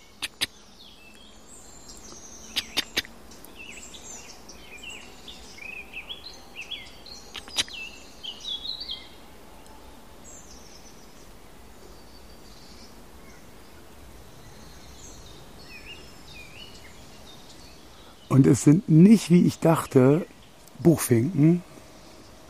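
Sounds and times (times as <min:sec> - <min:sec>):
red squirrel chirping in a sunlit tree: 0:00.0 - 0:00.6, 0:02.5 - 0:03.1, 0:06.7 - 0:08.8
sharp clicks: 0:07.4 - 0:07.7
speech: 0:18.4 - 0:21.7.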